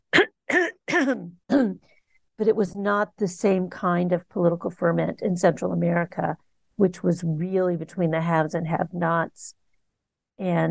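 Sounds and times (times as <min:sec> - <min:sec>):
person clearing throat: 0:00.1 - 0:01.8
speech: 0:01.0 - 0:09.6, 0:10.4 - 0:10.6.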